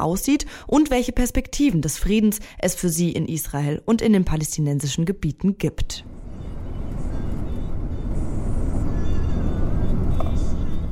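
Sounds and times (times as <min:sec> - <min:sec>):
speech: 0:00.0 - 0:06.2
taxi interior road and engine rumble driving through hilly countryside: 0:06.1 - 0:10.9.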